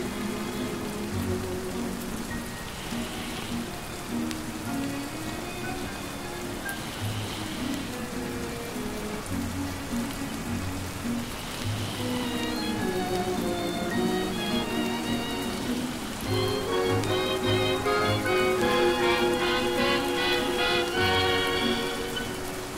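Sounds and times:
old-fashioned 1940s-style music with low bass notes and mellow chords: 0.0s - 22.7s
steady rain hissing: 0.0s - 22.7s.

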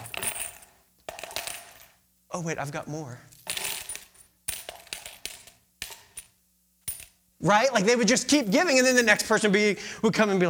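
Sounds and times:
coins of different shapes, sizes and weights dropping into a collection box: 0.0s - 2.0s, 3.3s - 7.2s, 8.3s - 9.7s
speech: 2.3s - 3.3s, 7.4s - 10.4s.

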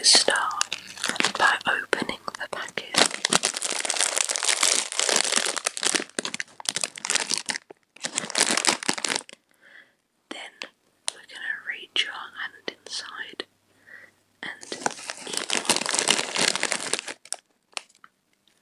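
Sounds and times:
person softly whispering: 0.0s - 3.2s, 10.3s - 13.5s, 14.4s - 16.2s
chip bag crinkling and tearing being opened: 0.2s - 1.7s, 2.8s - 9.4s, 14.6s - 18.0s.

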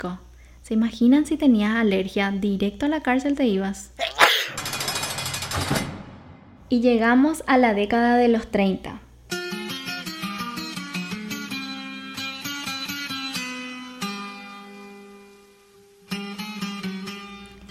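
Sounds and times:
speech: 0.0s - 4.6s, 6.7s - 9.1s
Puerto Rican song with bright rhythmic plucked chords: 9.3s - 17.6s.

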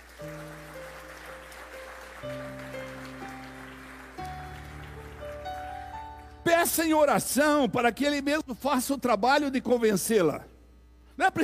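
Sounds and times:
crowd clapping: 0.0s - 7.0s
sustained keyboard chords: 0.0s - 8.7s
speech: 6.7s - 10.5s, 11.2s - 11.4s.

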